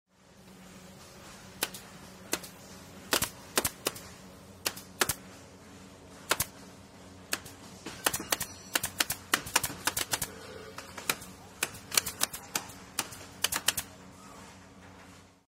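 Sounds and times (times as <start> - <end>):
pneumatic nail gun: 1.6 - 4.0, 4.6 - 5.2, 6.3 - 6.5, 7.3 - 10.4, 11.0 - 13.9.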